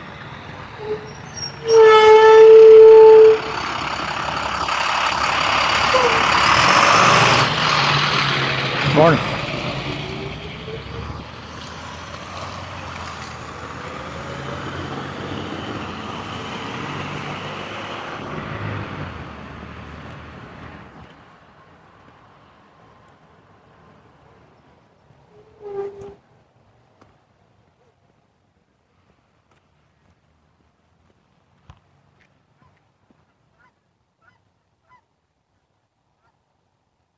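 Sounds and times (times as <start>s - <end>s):
garbage truck engine rumbling past: 0.0s - 21.0s
speech: 0.8s - 1.8s, 9.0s - 9.3s
loud piercing squeal: 0.8s - 3.5s.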